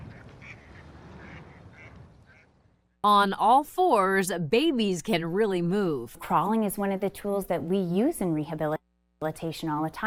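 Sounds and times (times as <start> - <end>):
duck quacking in short nasal bursts: 0.0 - 2.5
speech: 3.0 - 10.0.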